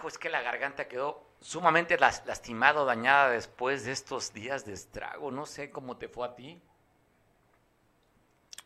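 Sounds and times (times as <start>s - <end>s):
speech: 0.0s - 6.7s
lips sipping mezcal: 8.0s - 8.6s.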